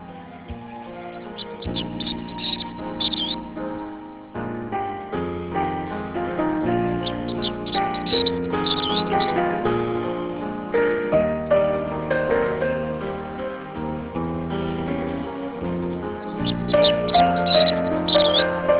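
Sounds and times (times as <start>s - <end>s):
mellow instrumental music played on the radio: 0.0s - 18.7s
birds chirping and twittering played on the radio: 1.3s - 3.6s, 6.4s - 9.8s, 15.1s - 18.7s.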